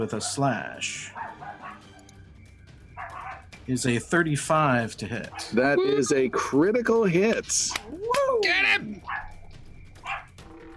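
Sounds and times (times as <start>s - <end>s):
speech: 0.0s - 1.4s, 3.7s - 9.2s
dog barking: 0.1s - 0.5s, 1.1s - 2.0s, 3.0s - 3.5s, 5.3s - 5.6s, 9.0s - 9.4s, 10.0s - 10.4s.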